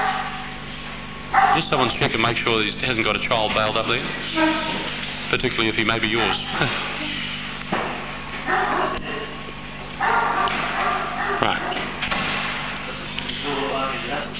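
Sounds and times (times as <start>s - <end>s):
dogs barking: 0.0s - 0.6s, 1.3s - 2.3s, 6.0s - 6.7s, 8.4s - 9.4s, 10.0s - 12.0s
steady low electrical hum: 0.0s - 14.3s
speech: 1.6s - 6.9s.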